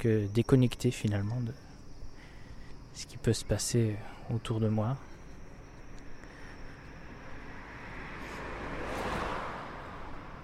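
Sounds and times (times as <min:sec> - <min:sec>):
speech: 0:00.0 - 0:01.7, 0:03.0 - 0:05.1
lone distant car passing: 0:05.0 - 0:10.4.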